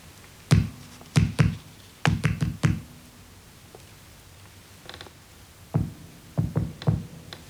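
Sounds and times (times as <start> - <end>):
low hiss: 0.0 - 7.4
knocking signals tapped on a wall: 0.5 - 3.0, 5.8 - 7.1.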